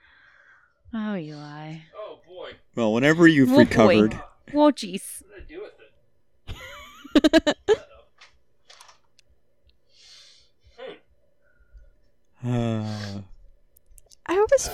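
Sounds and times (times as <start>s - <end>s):
quiet breathing: 0.0s - 0.8s, 9.9s - 10.8s, 11.4s - 12.0s, 12.7s - 13.3s
speech: 0.9s - 5.8s, 7.2s - 7.8s, 12.4s - 13.3s, 14.4s - 14.7s
laughter: 3.4s - 4.1s, 6.5s - 7.9s
man coughing during an asthma attack after laughing: 10.8s - 11.1s
long strained wheezy voiced gasp: 12.4s - 13.3s.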